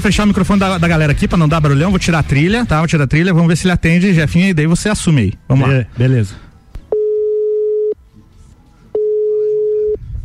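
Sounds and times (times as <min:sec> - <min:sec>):
speech: 0:00.0 - 0:06.5
faint noise: 0:00.0 - 0:10.2
telephone ringback tone on an outgoing call: 0:06.9 - 0:08.0, 0:08.9 - 0:10.0.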